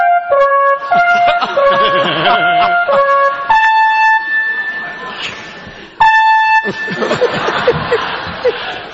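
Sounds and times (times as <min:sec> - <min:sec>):
fire department alarm ringing with shrill stepped electronic tones: 0:00.3 - 0:07.7
people chuckling: 0:00.8 - 0:03.2, 0:06.6 - 0:08.9
people talking: 0:00.9 - 0:02.9, 0:04.2 - 0:06.0, 0:06.7 - 0:08.9.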